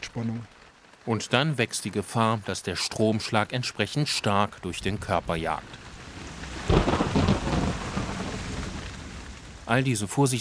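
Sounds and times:
rain pouring in a thunderstorm: 0:00.0 - 0:10.3
speech: 0:00.2 - 0:05.8, 0:09.7 - 0:10.3
deep rumble of thunder: 0:04.5 - 0:10.3.

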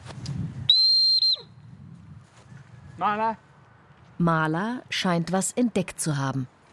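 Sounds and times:
dog whistle blast to call a dog back: 0:00.7 - 0:01.5
speech: 0:03.0 - 0:03.5, 0:04.2 - 0:06.6.

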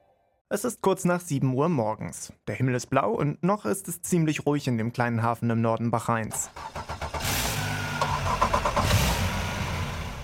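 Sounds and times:
speech: 0:00.5 - 0:07.0
boat motor cranking and starting then idling: 0:06.4 - 0:10.2.

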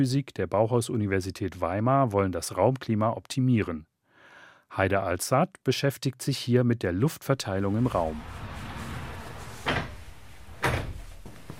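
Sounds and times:
speech: 0:00.0 - 0:03.9, 0:04.7 - 0:08.5
sliding door being opened in a building physics laboratory: 0:07.6 - 0:11.5.

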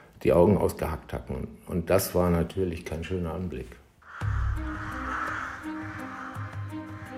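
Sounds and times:
speech: 0:00.2 - 0:03.8
crow cawing harshly: 0:04.0 - 0:07.1.

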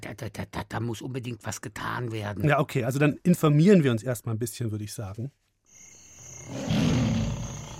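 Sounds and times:
speech: 0:00.1 - 0:05.5, 0:06.5 - 0:07.2
crickets or insects droning: 0:05.7 - 0:07.7
lion roaring: 0:06.5 - 0:07.7.

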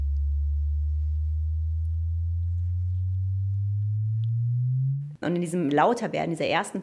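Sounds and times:
sonified gravitational-wave chirp from merging neutron stars: 0:00.0 - 0:05.2
speech: 0:05.2 - 0:06.8.

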